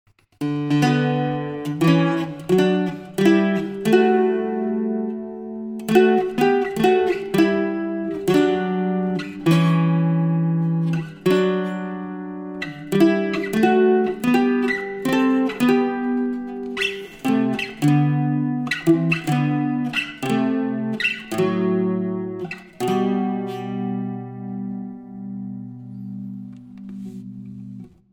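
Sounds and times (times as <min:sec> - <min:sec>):
bouzouki chords: 0:00.4 - 0:28.1.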